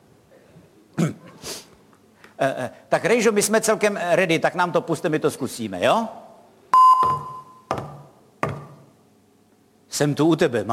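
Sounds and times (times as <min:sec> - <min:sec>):
person blowing nose: 0:01.4 - 0:01.7
speech: 0:02.4 - 0:06.2, 0:10.0 - 0:10.7.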